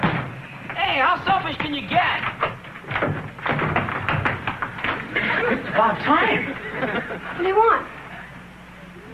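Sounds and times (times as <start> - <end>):
speech: 1.2 - 2.3, 5.8 - 8.0
pounding hard on a locked door: 1.2 - 5.0
laughter: 4.9 - 7.4.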